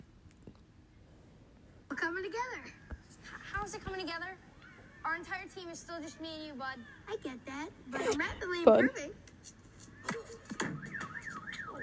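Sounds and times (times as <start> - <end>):
speech: 2.1 - 9.6
car alarm set off by a tennis ball wailing: 10.7 - 11.8.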